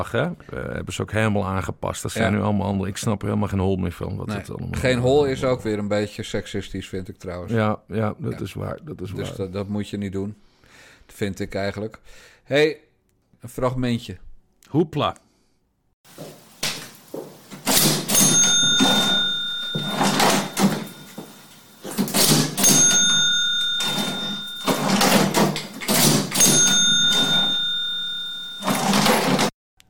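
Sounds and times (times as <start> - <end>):
speech: 0.0 - 10.4, 11.1 - 15.2
cash register keys clattering: 17.5 - 29.5.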